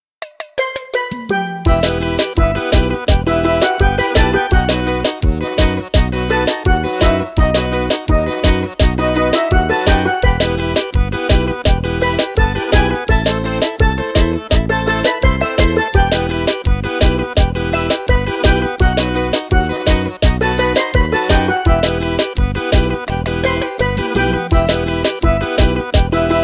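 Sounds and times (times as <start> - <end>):
forro rhythm playing: 0.2 - 26.4.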